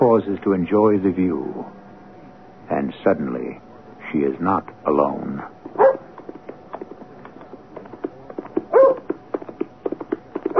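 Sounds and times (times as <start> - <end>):
speech: 0.2 - 1.8, 2.7 - 5.8
horse galloping along a hard-frozen moor road: 5.6 - 10.5
dog barking with sharp yelps: 5.8 - 6.1, 8.7 - 9.1.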